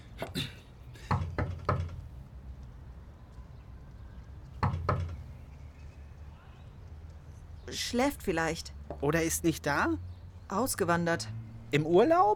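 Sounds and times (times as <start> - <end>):
knocking on a door: 1.1 - 2.0, 4.6 - 5.2
speech: 7.7 - 12.3.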